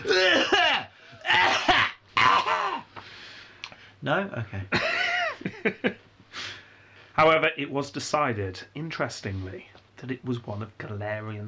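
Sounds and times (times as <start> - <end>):
person imitating loud harsh coughing: 0.0 - 2.9
speech: 4.0 - 6.0, 7.2 - 11.4.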